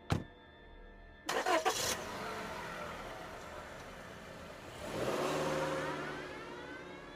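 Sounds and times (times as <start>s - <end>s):
car door thudding shut: 0.0s - 0.3s
car engine cranking, idling and revving as the car pulls away: 1.3s - 7.1s.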